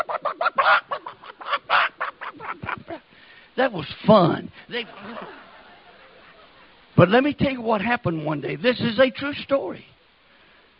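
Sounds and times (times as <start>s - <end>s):
human voice imitating chickens squawking when pulled backwards by the tail: 0.0s - 3.1s
laughter: 0.0s - 3.1s, 4.7s - 6.7s
speech: 3.6s - 5.4s, 7.0s - 9.9s.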